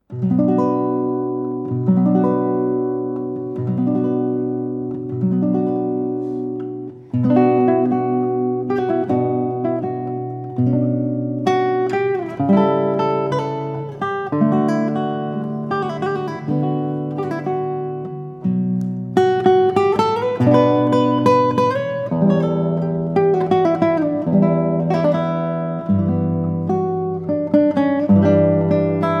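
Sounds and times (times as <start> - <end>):
solo guitar adagio: 0.0 - 29.1.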